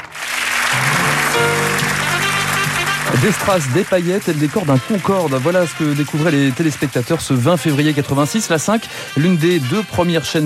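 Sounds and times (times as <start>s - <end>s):
crowd applauding at a television channel's final broadcast: 0.0s - 8.8s
sustained musical tones: 0.6s - 6.8s
speech: 3.2s - 10.4s.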